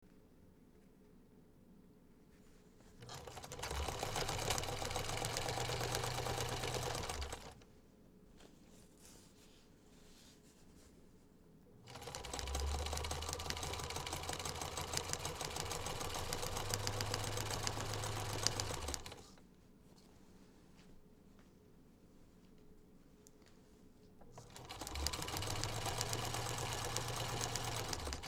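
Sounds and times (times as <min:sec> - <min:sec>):
sewing machine run by an inexperienced user: 0:03.0 - 0:07.6, 0:11.9 - 0:19.3, 0:24.4 - 0:28.2.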